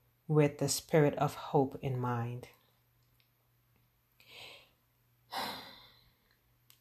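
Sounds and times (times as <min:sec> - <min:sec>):
speech: 0:00.3 - 0:02.6
deep breaths inhaling and exhaling: 0:04.2 - 0:06.3.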